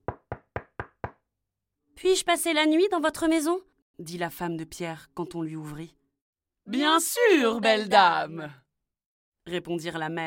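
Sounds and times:
knocking on a wooden door: 0:00.0 - 0:01.2
speech: 0:02.0 - 0:06.0, 0:06.7 - 0:08.6, 0:09.5 - 0:10.2.

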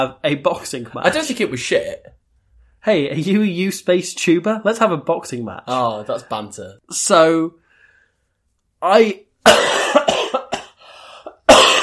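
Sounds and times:
speech: 0:00.0 - 0:02.2, 0:02.8 - 0:07.6, 0:08.8 - 0:10.0
ill person coughing: 0:09.4 - 0:11.8.

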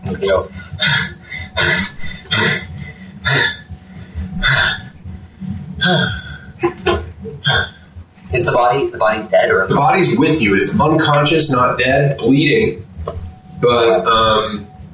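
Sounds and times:
speech: 0:00.1 - 0:01.1, 0:08.7 - 0:12.9, 0:13.6 - 0:14.7
heavy ragged breathing: 0:00.1 - 0:06.8.

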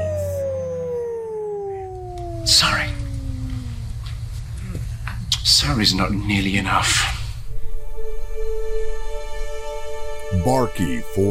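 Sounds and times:
wolf howling: 0:00.0 - 0:04.7
low rumbling background: 0:00.0 - 0:11.2
speech: 0:02.4 - 0:03.0, 0:05.4 - 0:07.2, 0:10.4 - 0:11.2.

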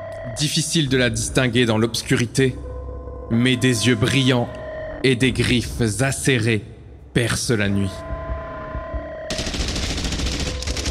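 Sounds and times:
speech: 0:00.3 - 0:02.7, 0:03.3 - 0:08.1
gunfire from soldiers shooting in the trenches: 0:09.3 - 0:10.8.

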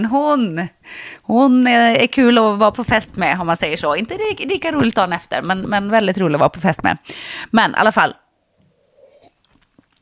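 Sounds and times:
speech: 0:00.0 - 0:08.2
person sipping coffee: 0:08.6 - 0:10.0.

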